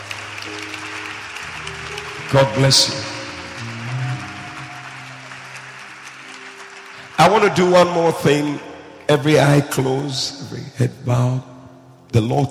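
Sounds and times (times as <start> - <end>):
audience clapping for people coming forward for prayer: 0.0 - 8.6
speech: 2.3 - 3.1, 7.2 - 11.5, 12.1 - 12.5.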